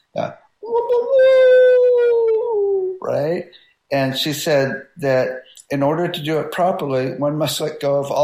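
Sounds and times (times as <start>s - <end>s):
speech: 0.1s - 1.4s, 3.1s - 8.2s
person imitating a wolf howl: 0.6s - 3.3s.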